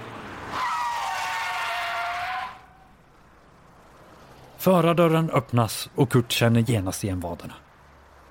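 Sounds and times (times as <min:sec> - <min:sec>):
car braking hard with tires screeching: 0:00.0 - 0:05.5
speech: 0:04.6 - 0:07.6.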